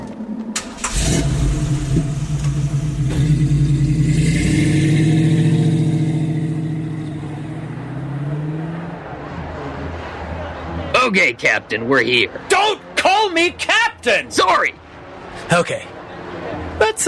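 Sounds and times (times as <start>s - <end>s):
car engine cranking, revving and driving off: 0.6s - 11.0s
speech: 11.1s - 12.8s, 13.4s - 14.8s, 15.5s - 15.9s.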